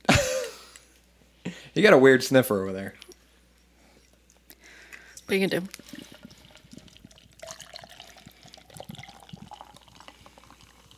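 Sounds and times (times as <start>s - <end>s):
speech: 1.8s - 3.0s, 5.3s - 6.1s
beer pouring steadily into a glass: 5.8s - 10.9s.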